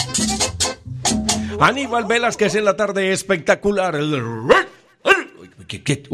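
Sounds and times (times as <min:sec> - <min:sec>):
speech: 0:01.6 - 0:04.7, 0:05.7 - 0:06.1
dog barking in quick sharp yaps: 0:04.5 - 0:05.4.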